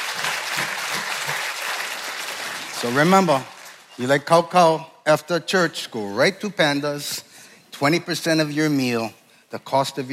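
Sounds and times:
audience clapping: 0:00.0 - 0:04.0
speech: 0:02.8 - 0:10.1.

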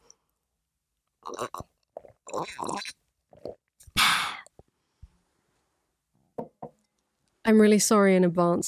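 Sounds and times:
person drinking and sipping: 0:01.2 - 0:04.7
speech: 0:01.3 - 0:01.7, 0:02.3 - 0:03.0, 0:07.5 - 0:08.6.

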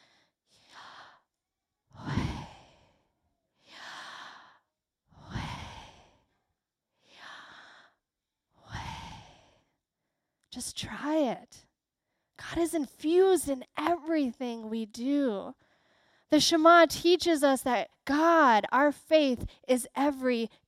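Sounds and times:
slow deliberate breathing in and out: 0:00.0 - 0:10.4, 0:15.6 - 0:16.3
speech: 0:10.6 - 0:11.7, 0:12.4 - 0:15.6, 0:16.3 - 0:20.6.

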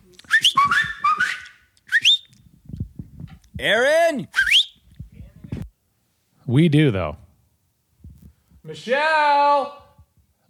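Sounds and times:
person whistling warbling call notes to call someone: 0:00.2 - 0:02.4, 0:04.3 - 0:04.8
speech: 0:03.6 - 0:04.4, 0:06.5 - 0:07.2, 0:08.7 - 0:09.8.

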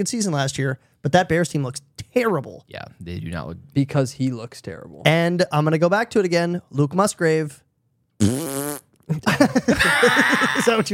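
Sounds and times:
speech: 0:00.0 - 0:07.6, 0:08.2 - 0:08.5, 0:09.1 - 0:10.9
loud buzzy fart: 0:08.2 - 0:09.0
laughter: 0:09.1 - 0:10.9.

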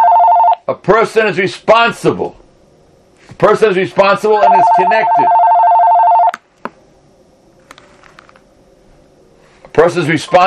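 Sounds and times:
electronic telephone ring: 0:00.0 - 0:00.6, 0:04.4 - 0:06.4
speech: 0:00.7 - 0:02.4, 0:03.3 - 0:05.4, 0:09.8 - 0:10.4.

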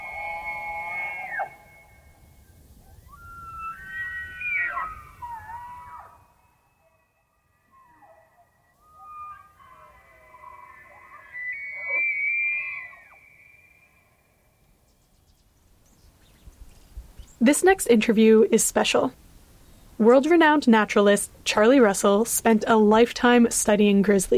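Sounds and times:
rutting male elk bugling: 0:00.0 - 0:14.3
speech: 0:17.4 - 0:19.2, 0:20.0 - 0:24.3.

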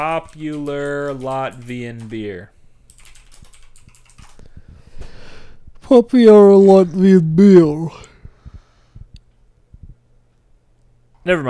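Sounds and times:
speech: 0:00.0 - 0:02.6, 0:05.9 - 0:08.1, 0:11.2 - 0:11.4
typing a search on a computer keyboard: 0:00.0 - 0:07.7.

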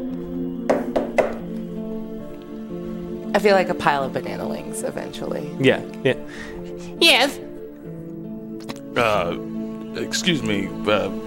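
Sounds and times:
knocking on a door: 0:00.7 - 0:01.4
speech: 0:03.4 - 0:07.5, 0:09.0 - 0:11.2.

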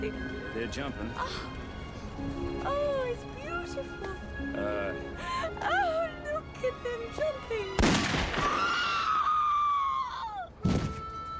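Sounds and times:
speech: 0:00.0 - 0:01.6, 0:02.2 - 0:08.9
woman screaming in movie clip: 0:08.4 - 0:11.3.

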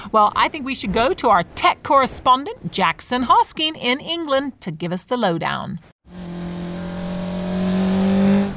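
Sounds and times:
speech: 0:00.1 - 0:05.9
car engine roaring past: 0:06.1 - 0:08.5.

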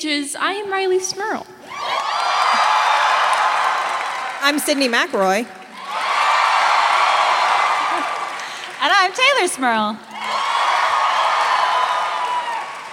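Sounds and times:
speech: 0:00.0 - 0:02.0, 0:04.4 - 0:05.6, 0:08.8 - 0:10.1
live audience applause and cheering: 0:01.6 - 0:12.9.

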